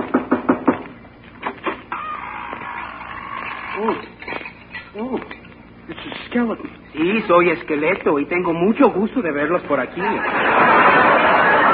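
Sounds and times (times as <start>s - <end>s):
knocking on a door: 0.0s - 0.9s
speech: 3.8s - 4.1s, 5.0s - 5.4s, 6.3s - 11.0s
laughter: 9.9s - 11.7s.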